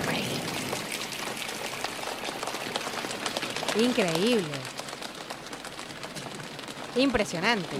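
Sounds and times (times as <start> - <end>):
choir body percussion imitating rain on a roof: 0.1 - 7.7
speech: 3.7 - 4.7, 6.9 - 7.7.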